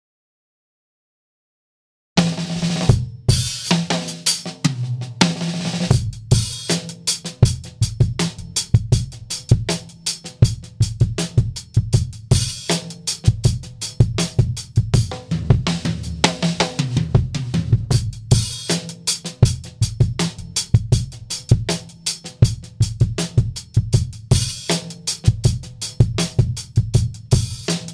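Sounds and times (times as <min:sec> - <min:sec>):
drum sample: 0:02.2 - 0:27.9.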